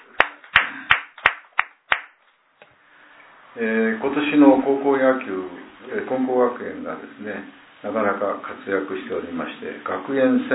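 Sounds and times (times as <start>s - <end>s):
sharp hand claps with short room echo: 0.0s - 2.3s
speech: 3.6s - 10.5s.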